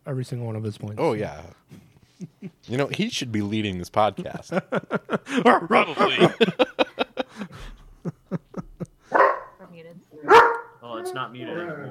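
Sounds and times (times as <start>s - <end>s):
speech: 0.1s - 6.7s, 11.1s - 11.8s
laughter: 2.2s - 3.1s, 4.0s - 9.1s
dog barking loudly: 9.1s - 9.6s, 10.2s - 10.8s.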